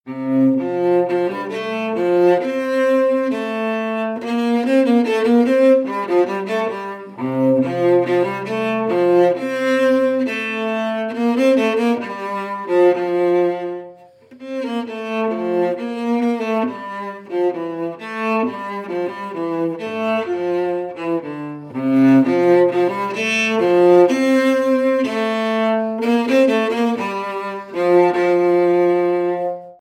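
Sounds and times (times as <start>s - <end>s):
wood cello traditional sequence loop: 0.1s - 29.7s.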